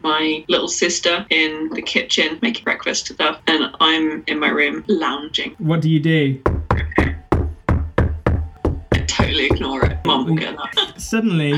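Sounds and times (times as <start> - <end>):
speech: 0.2 - 7.2, 9.4 - 11.5
firm knocking on a front door: 6.4 - 10.2.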